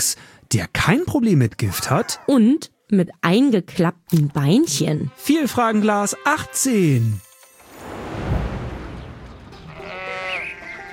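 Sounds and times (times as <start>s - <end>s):
speech: 0.0s - 7.3s
sheep bleating loudly: 9.6s - 10.9s.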